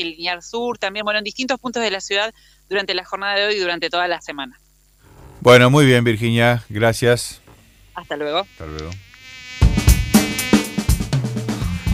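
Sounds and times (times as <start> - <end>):
speech: 0.0 - 4.6, 5.4 - 7.4, 8.0 - 9.1
mosquito buzzing: 4.6 - 6.0, 6.7 - 11.9.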